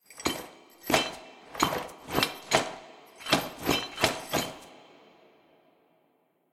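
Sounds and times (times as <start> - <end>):
footsteps: 0.2 - 4.7.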